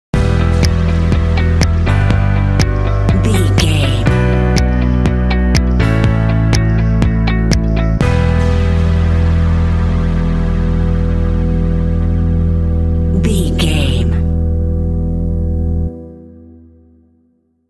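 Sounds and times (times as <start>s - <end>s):
uplifting ambient mood music sting: 0.2s - 16.7s.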